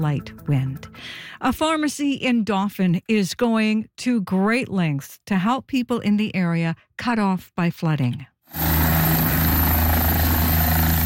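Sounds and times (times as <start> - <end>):
speech: 0.0 - 8.6
helicopter rotor and engine drone departing: 8.5 - 11.0.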